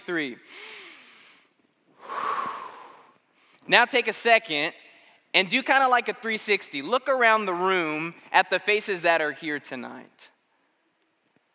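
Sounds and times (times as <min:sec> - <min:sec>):
speech: 0:00.1 - 0:00.8, 0:03.7 - 0:10.3
roomful of people breathing in and out together: 0:00.5 - 0:03.7.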